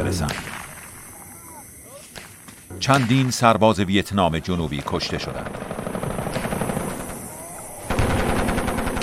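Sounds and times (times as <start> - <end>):
speech: 0.1 - 0.6, 2.8 - 5.7
Viet Cong machine gun fire at landing helicopters near Ap Bac: 5.4 - 7.2, 7.9 - 9.0.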